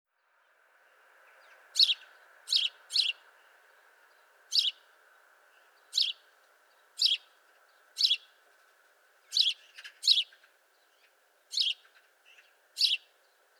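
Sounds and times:
house sparrow chirping: 1.4 - 4.9, 5.6 - 8.4, 9.2 - 13.5.

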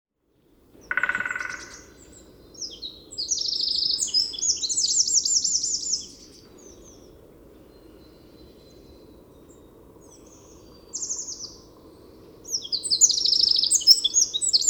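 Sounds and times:
Eurasian wren Troglodytes troglodytes singing: 0.8 - 7.1, 9.5 - 14.6.

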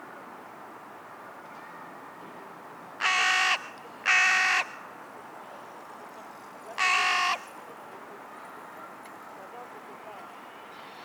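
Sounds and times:
carrion crow Corvus corone cawing: 3.0 - 4.9, 6.8 - 7.5.

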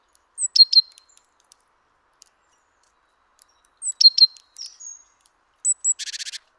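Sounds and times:
great tit calls: 0.1 - 1.3, 3.4 - 6.5.

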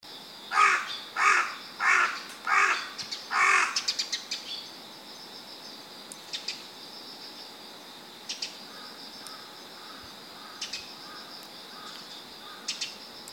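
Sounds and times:
steady insect-like buzz: 0.1 - 13.3
carrion crow Corvus corone giving harsh hoarse caws: 0.5 - 3.9, 8.7 - 12.8.

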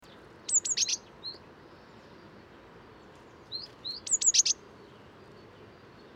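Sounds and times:
background hiss: 0.0 - 6.1
Eurasian blue tit Cyanistes caeruleus calls: 0.1 - 1.4, 3.4 - 5.0.

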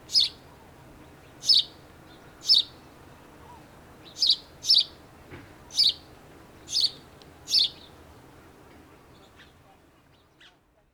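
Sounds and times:
house sparrow Passer domesticus chirping: 0.1 - 0.4, 1.4 - 1.7, 2.4 - 2.7, 4.1 - 4.9, 5.7 - 6.0, 6.7 - 7.9.

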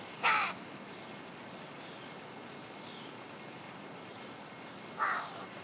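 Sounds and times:
carrion crow Corvus corone cawing: 0.2 - 0.6, 5.0 - 5.5.

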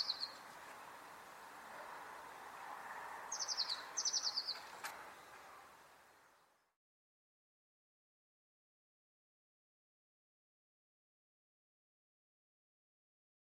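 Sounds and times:
Eurasian blue tit Cyanistes caeruleus high-pitched rattling calls: 0.0 - 0.4, 3.3 - 4.8
steady background noise: 0.0 - 6.7.

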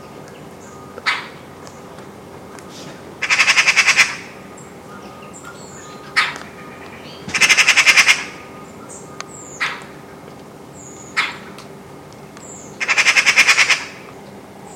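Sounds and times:
Eurasian magpie Pica pica giving harsh rattling chatters: 3.2 - 4.4, 6.1 - 8.4, 12.8 - 14.0
Eurasian magpie Pica pica single sharp calls: 3.2 - 4.4, 5.7 - 8.6, 9.4 - 9.9, 11.0 - 11.6, 12.6 - 14.1.

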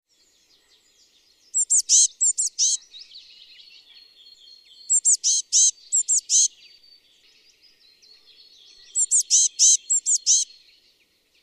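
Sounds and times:
soft Eurasian blue tit twittering: 0.2 - 10.9
Eurasian blue tit (Cyanistes caeruleus) calling in high thin chirps: 1.5 - 2.8, 4.9 - 6.5, 8.8 - 10.5.

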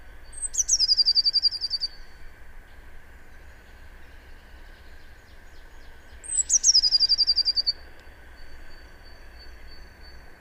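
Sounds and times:
constant background hum: 0.0 - 10.3
Eurasian blue tit trilling: 0.4 - 2.0, 6.2 - 7.8.

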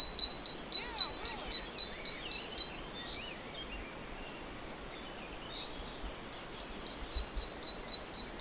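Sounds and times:
faint softer chirps from another bird: 0.0 - 8.3.

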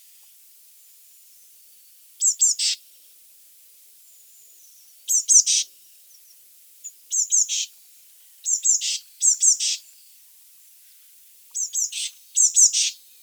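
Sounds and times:
Eurasian blue tit Cyanistes caeruleus calls: 2.2 - 2.8, 5.1 - 5.6, 7.1 - 7.7, 8.4 - 9.8, 11.6 - 13.0.

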